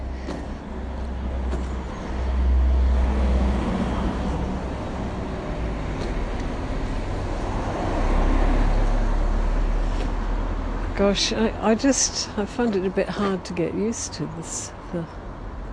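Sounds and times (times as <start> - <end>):
constant stream of cars and heavier vehicles on a narrow main road into town: 0.0 - 15.7
speech: 11.0 - 15.2.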